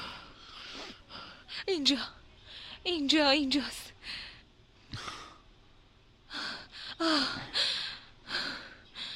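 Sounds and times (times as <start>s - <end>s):
person breathing heavily: 0.0s - 1.6s, 4.0s - 5.5s, 6.3s - 9.1s
speech: 1.6s - 2.2s, 2.8s - 4.2s, 7.0s - 7.7s.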